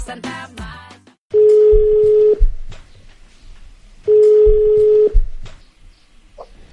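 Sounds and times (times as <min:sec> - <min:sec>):
telephone ringback tone of a call for a live on-air interview: 0:01.4 - 0:02.4, 0:04.1 - 0:05.2.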